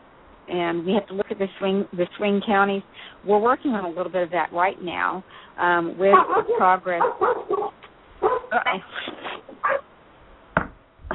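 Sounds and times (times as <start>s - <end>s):
speech: 0.5s - 9.8s
dog barking in short uneven bursts: 6.1s - 8.5s, 9.6s - 9.9s.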